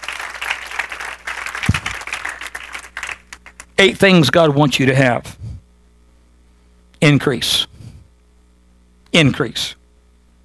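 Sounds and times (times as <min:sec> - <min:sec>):
audience clapping in praise: 0:00.0 - 0:03.8
speech: 0:03.8 - 0:05.4, 0:07.1 - 0:07.7, 0:09.2 - 0:09.8.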